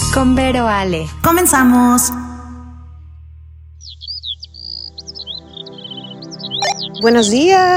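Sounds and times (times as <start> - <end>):
speech: 0.2 - 2.3, 7.0 - 7.7
birds chirping and warbling at the beach: 3.8 - 7.7.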